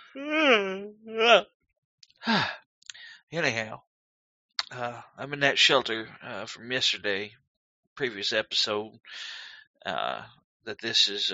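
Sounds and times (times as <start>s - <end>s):
speech: 0.2s - 0.7s, 3.3s - 3.9s, 4.7s - 7.4s, 8.0s - 11.3s
person yawning after waking up in a shelter: 2.2s - 2.6s
person sighing exhale: 2.2s - 3.1s, 9.2s - 10.2s.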